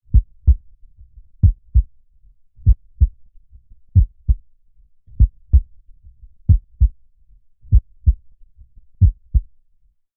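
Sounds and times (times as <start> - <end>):
human heartbeat through chest: 0.0 - 2.0, 2.6 - 4.5, 5.1 - 7.0, 7.6 - 9.6.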